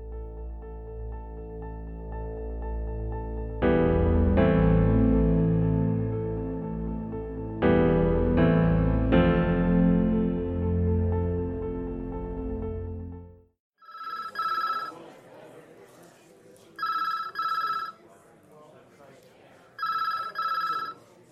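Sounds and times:
sustained tonal music: 0:00.0 - 0:13.3
telephone ringing with a double trill: 0:13.8 - 0:15.0, 0:16.8 - 0:18.0, 0:19.8 - 0:21.0
murmur of a busy room: 0:14.3 - 0:21.3.

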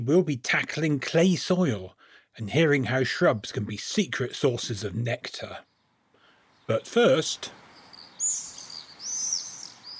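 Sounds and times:
speech: 0:00.0 - 0:05.7, 0:06.7 - 0:07.6
common swift screaming calls: 0:07.5 - 0:09.9.

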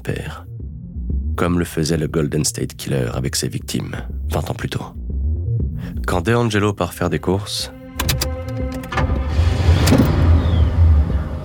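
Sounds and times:
speech: 0:00.0 - 0:00.5, 0:01.4 - 0:05.0, 0:06.1 - 0:07.8
car engine rumbling while driving up and parking: 0:08.0 - 0:11.4.

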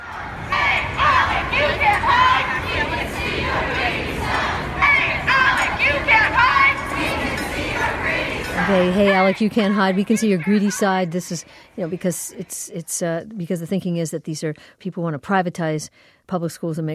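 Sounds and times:
crowd murmur: 0:00.0 - 0:12.7
protesters chanting outside a conservative organization's meeting in Colorado: 0:00.0 - 0:13.1
speech: 0:08.7 - 0:16.9.

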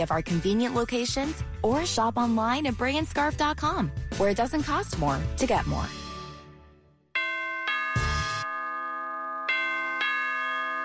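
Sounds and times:
speech: 0:00.0 - 0:06.0
doorbell ding-dong chime: 0:07.2 - 0:10.8.

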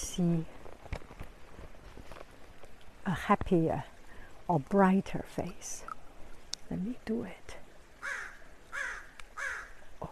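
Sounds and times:
faint noise: 0:00.0 - 0:10.0
speech: 0:00.2 - 0:00.6, 0:03.1 - 0:03.9, 0:04.5 - 0:05.9, 0:06.7 - 0:08.2
crow cawing: 0:08.0 - 0:09.8.

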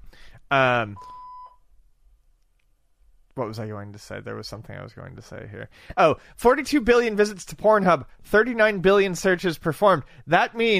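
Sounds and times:
speech: 0:00.4 - 0:01.2, 0:03.4 - 0:10.7
phone electronic beeps and dialing tones: 0:01.0 - 0:01.6.

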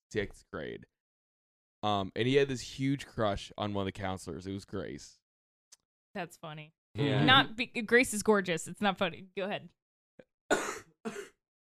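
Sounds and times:
speech: 0:00.1 - 0:01.0, 0:01.8 - 0:05.2, 0:06.1 - 0:09.8
harsh coughs: 0:10.5 - 0:11.4.

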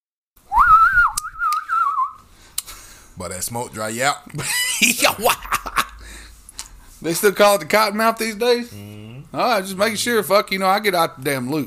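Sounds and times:
person whistling a sustained swooping note: 0:00.5 - 0:02.2
speech: 0:03.2 - 0:05.8, 0:07.0 - 0:11.6.

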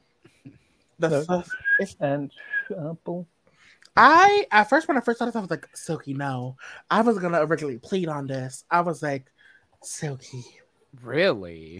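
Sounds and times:
speech: 0:01.0 - 0:03.4, 0:04.0 - 0:11.7
thin attempt at whistling: 0:01.2 - 0:02.7.

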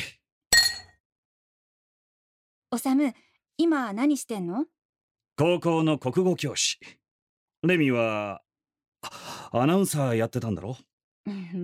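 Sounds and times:
glasses clinking in a toast: 0:00.6 - 0:01.0
speech: 0:02.7 - 0:04.8, 0:05.4 - 0:07.0, 0:07.6 - 0:08.4, 0:09.0 - 0:11.6.

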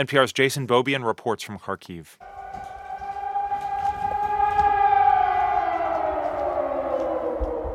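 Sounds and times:
speech: 0:00.0 - 0:02.7
air raid siren wailing: 0:02.2 - 0:07.7.

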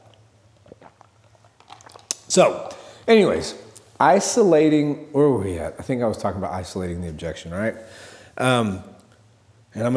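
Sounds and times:
wet chewing of gum: 0:00.0 - 0:02.3
speech: 0:02.3 - 0:08.9, 0:09.7 - 0:09.9.

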